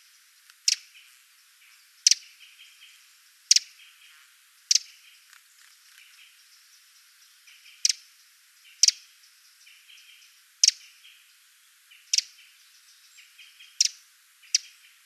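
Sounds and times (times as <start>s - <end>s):
faint chirps: 0.0s - 15.0s
Eurasian wren Troglodytes troglodytes sharp tick calls: 0.4s - 1.0s, 2.0s - 2.2s, 3.5s - 3.9s, 4.7s - 6.4s, 7.5s - 8.0s, 8.6s - 9.0s, 9.9s - 10.9s, 11.9s - 12.5s, 13.2s - 15.0s.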